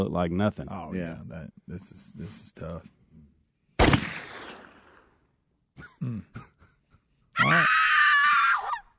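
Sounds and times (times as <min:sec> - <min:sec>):
speech: 0:00.0 - 0:03.0, 0:06.0 - 0:06.5, 0:07.4 - 0:07.8
sharp burst: 0:03.8 - 0:05.1
girl screaming: 0:07.4 - 0:08.9.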